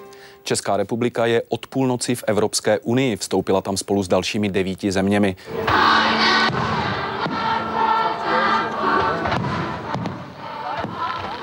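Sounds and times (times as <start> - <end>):
speech: 0.4 - 6.8
crowd murmuring at the Czech-German-Polish border tripoint: 5.6 - 11.4
fireworks exploding at the Czech-German-Polish border tripoint: 5.6 - 11.4.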